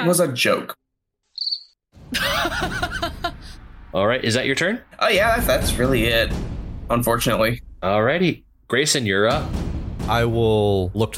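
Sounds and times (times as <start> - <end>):
speech: 0.0 - 0.8, 3.9 - 11.1
cricket chirp: 1.4 - 1.8
people laughing loudly: 2.1 - 3.6.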